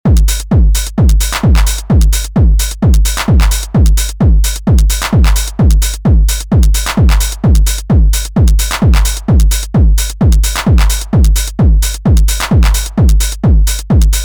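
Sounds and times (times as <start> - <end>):
909 drum machine bus: 0.0 - 14.2.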